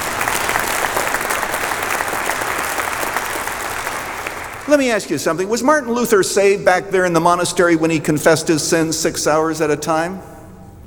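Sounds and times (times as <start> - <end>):
large crowd clapping: 0.0 - 5.2
speech: 4.7 - 10.4.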